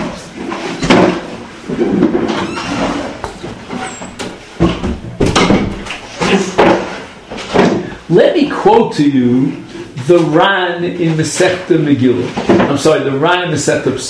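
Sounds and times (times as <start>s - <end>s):
steady rumble of room noise: 0.0s - 14.0s
heavy doors closing with thuds and bangs: 0.8s - 7.9s
speech: 8.1s - 14.0s.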